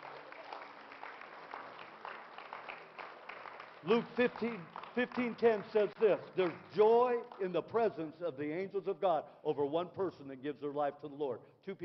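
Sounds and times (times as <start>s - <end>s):
audience clapping: 0.0s - 7.8s
speech: 3.8s - 11.8s.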